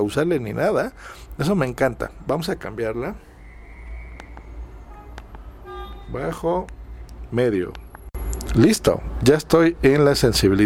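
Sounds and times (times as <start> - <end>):
speech: 0.0 - 3.3, 6.1 - 7.8, 8.5 - 10.6
low rumble of street traffic drifting into an office: 0.0 - 10.6
brief tonal honk-like sound: 4.8 - 6.3.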